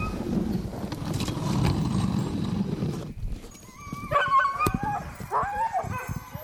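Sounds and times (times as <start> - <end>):
low rumbling scraping noise of a dog sled ride: 0.1 - 3.5
pack of excited sled dogs yipping, barking and howling in Bayfield, Wisconsin: 3.6 - 6.4.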